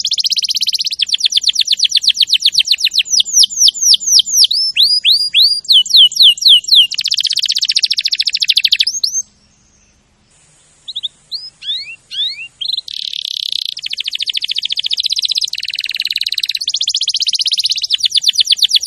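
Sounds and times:
champion canary song of trills and whistles: 0:00.0 - 0:18.8.

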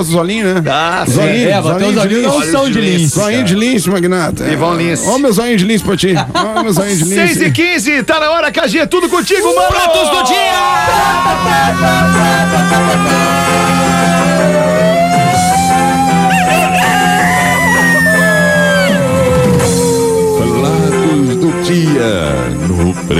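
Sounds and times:
speech: 0:00.0 - 0:14.6
laughter: 0:05.7 - 0:07.6, 0:09.5 - 0:21.7
rooster crowing: 0:10.7 - 0:21.4
dense loud bed of sustained tones: 0:10.8 - 0:23.1.

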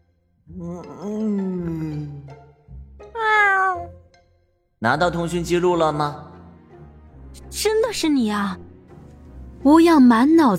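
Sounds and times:
speech: 0:00.5 - 0:01.4, 0:04.8 - 0:06.3, 0:07.5 - 0:08.7, 0:09.6 - 0:10.5
white cat making a long low groaning vocalization: 0:03.2 - 0:03.9.

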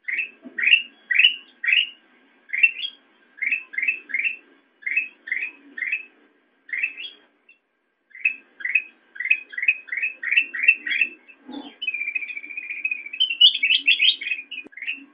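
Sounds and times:
sooty-headed bulbul chirping and warbling: 0:00.0 - 0:15.1.

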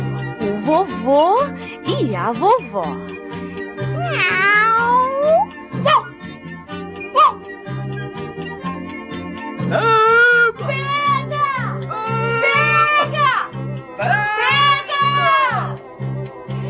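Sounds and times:
music in a children's story recording: 0:00.0 - 0:16.6
speech: 0:00.7 - 0:03.1, 0:04.1 - 0:06.0, 0:09.7 - 0:10.1
kitten meowing: 0:04.0 - 0:05.5.

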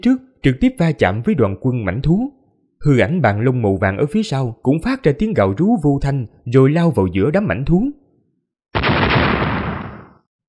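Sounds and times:
speech: 0:00.0 - 0:08.0
powerful explosion: 0:08.8 - 0:10.2.

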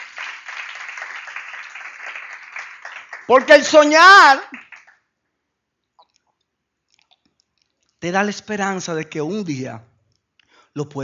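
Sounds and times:
church congregation applauding: 0:00.0 - 0:05.0
speech: 0:03.3 - 0:04.6, 0:08.0 - 0:09.9, 0:10.8 - 0:11.0.

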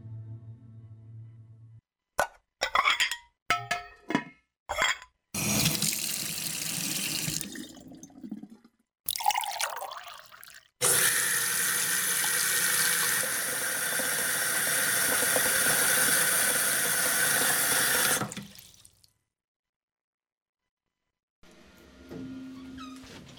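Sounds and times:
dish handling sounds: 0:02.2 - 0:05.0
water running from a tap into a sink while dishes are washed: 0:05.4 - 0:18.9.

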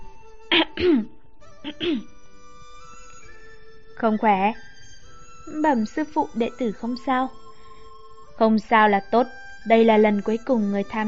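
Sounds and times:
soft dry coughing: 0:00.5 - 0:01.1, 0:01.7 - 0:02.1
speech: 0:00.5 - 0:02.1, 0:04.0 - 0:04.7, 0:05.5 - 0:07.4, 0:08.4 - 0:11.0.

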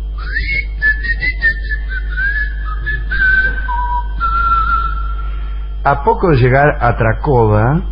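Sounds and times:
steady low hum: 0:00.0 - 0:07.9
people whistling a melody: 0:00.2 - 0:05.3
speech: 0:05.8 - 0:07.9.

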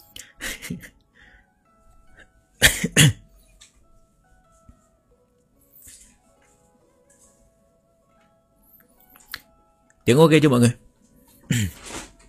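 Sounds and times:
person who has lost their voice coughing: 0:02.6 - 0:03.3, 0:11.4 - 0:11.9
speech: 0:03.0 - 0:03.2, 0:10.1 - 0:10.8.

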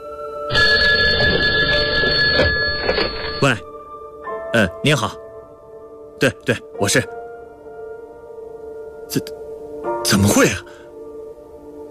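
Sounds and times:
embassy telephone electric bell ringing: 0:00.5 - 0:03.7
speech: 0:03.4 - 0:03.7, 0:04.6 - 0:05.2, 0:06.2 - 0:07.2, 0:09.1 - 0:09.4, 0:10.0 - 0:10.8.

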